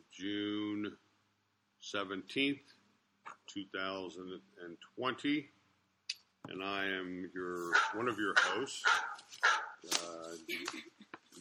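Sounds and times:
speech: 0.2 - 1.0, 1.8 - 2.8, 3.5 - 5.6, 6.4 - 11.0
text message alert tone imitating a barking dog: 7.6 - 9.9.

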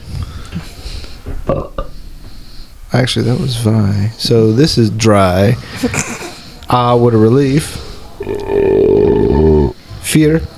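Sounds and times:
low rumbling belch: 1.4 - 2.0, 8.2 - 9.8
speech: 1.5 - 1.7, 2.9 - 8.5, 10.1 - 10.5
laughter: 5.6 - 6.9.

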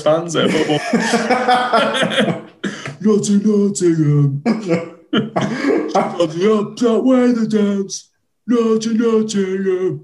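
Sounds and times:
speech: 0.0 - 10.0
laughter: 0.2 - 3.0, 5.1 - 6.6
loud rough voiced coughing: 0.5 - 3.0, 4.5 - 6.5.

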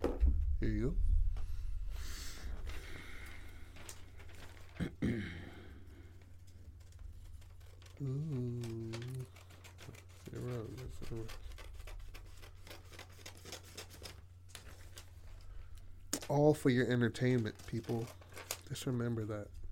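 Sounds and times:
low hum: 0.0 - 19.7
speech: 0.6 - 1.1, 16.3 - 19.6
scissors cutting paper: 6.7 - 15.1, 17.2 - 19.2.

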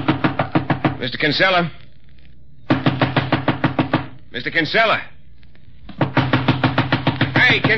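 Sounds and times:
firm knocks on a wooden bedroom door: 0.0 - 1.0, 2.7 - 4.2, 5.9 - 7.7
speech: 1.0 - 1.8, 4.4 - 5.1, 7.4 - 7.7.

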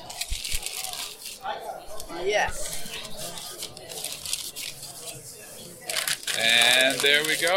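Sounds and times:
brown paper bag crinkling and rustling as lion's mane mushrooms are dropped inside: 0.0 - 1.4, 2.6 - 5.1, 5.8 - 7.5
faint voices: 0.0 - 7.5
speech: 2.1 - 2.8, 6.4 - 7.5.

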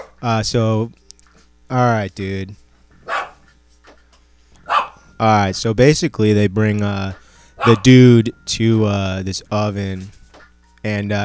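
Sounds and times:
pet dogs barking excitedly with high yappy barks: 0.0 - 0.2, 3.0 - 3.6, 4.6 - 5.1, 7.1 - 7.9
speech: 0.2 - 1.0, 1.7 - 2.6, 5.2 - 10.2, 10.8 - 11.2.

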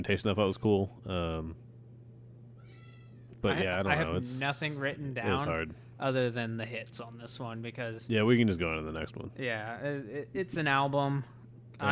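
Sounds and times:
speech: 0.0 - 1.7, 3.4 - 11.9
cat meowing: 2.6 - 3.4.

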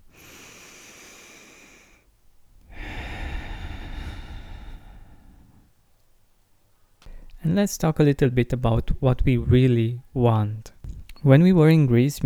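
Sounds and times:
deep breath in and out: 0.0 - 5.8
speech: 7.4 - 12.2.

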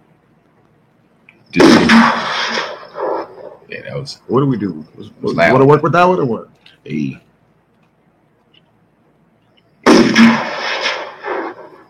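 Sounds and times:
speech: 1.5 - 2.2, 3.7 - 7.3
gunshot sound effect with booming echo: 1.6 - 3.2, 9.9 - 11.6.

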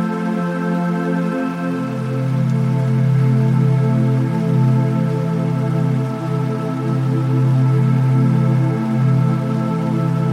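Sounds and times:
soft relaxing music of long held tones and warm drone: 0.0 - 10.3.

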